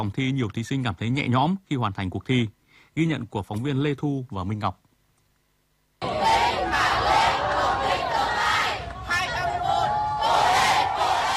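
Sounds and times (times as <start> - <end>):
speech: 0.0 - 4.8
crowd of youth volunteers and parents cheering and shouting in Hanoi: 6.0 - 11.3
volunteers and parents clapping: 8.8 - 9.2.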